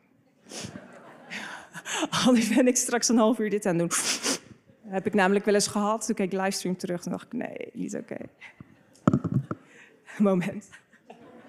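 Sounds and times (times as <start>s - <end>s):
laughter: 0.5s - 1.8s, 10.7s - 11.4s
speech: 2.2s - 4.2s, 4.9s - 8.7s, 10.2s - 10.8s
person blowing nose: 3.9s - 4.6s.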